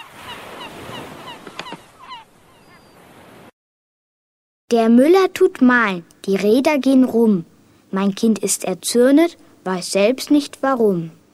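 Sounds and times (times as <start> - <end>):
seagulls crying: 0.0 - 3.1
speech: 4.7 - 11.2.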